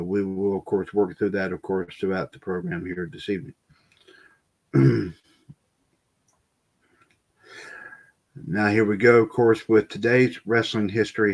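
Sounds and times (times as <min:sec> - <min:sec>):
speech: 0:00.1 - 0:03.6, 0:04.7 - 0:05.3, 0:08.4 - 0:11.3
person clearing throat: 0:04.8 - 0:05.2.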